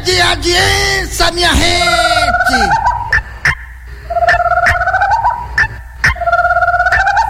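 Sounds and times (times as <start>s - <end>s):
speech: 0.3s - 2.8s
guinea fowl calling: 2.0s - 7.2s.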